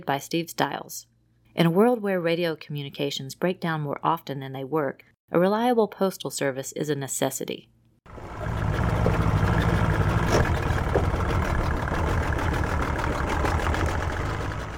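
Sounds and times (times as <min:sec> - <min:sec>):
speech: 0:00.0 - 0:07.8
boat engine idling while docking: 0:08.1 - 0:14.7.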